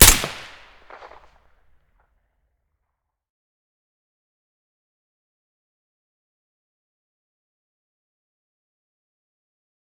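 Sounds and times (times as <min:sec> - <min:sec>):
suppressed SVD rifle shot: 0:00.0 - 0:01.2.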